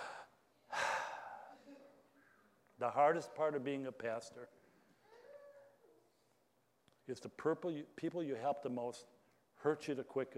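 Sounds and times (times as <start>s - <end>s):
deep breath in and exhale: 0.0s - 1.6s
speech: 2.8s - 4.6s, 7.1s - 10.3s.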